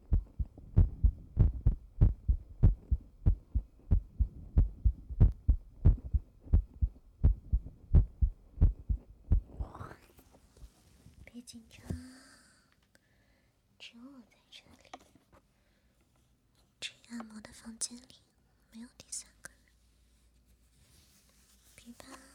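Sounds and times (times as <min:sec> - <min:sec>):
rapid heartbeat: 0:00.0 - 0:09.7
speech: 0:17.6 - 0:19.3.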